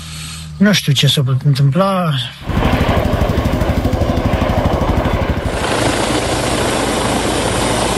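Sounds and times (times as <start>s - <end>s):
speech: 0.6s - 3.2s
helicopter rotor chopping overhead during a search for a missing child: 2.4s - 7.9s.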